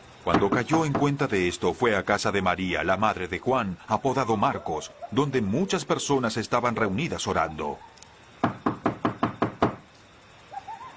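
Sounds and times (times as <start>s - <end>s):
speech: 0.2s - 7.9s
firm knocks on a wooden street door: 0.3s - 1.2s, 8.4s - 9.8s.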